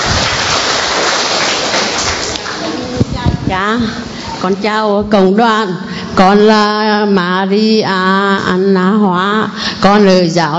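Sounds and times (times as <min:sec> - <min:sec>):
crowd applauding: 0:00.0 - 0:03.0
speech: 0:03.5 - 0:10.5.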